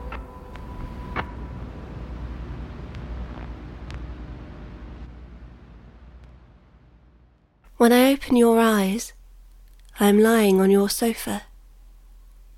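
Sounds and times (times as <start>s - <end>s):
radio static hiss: 0.0s - 7.3s
radio static crackles: 0.0s - 12.5s
speech: 7.8s - 9.2s, 10.0s - 11.5s.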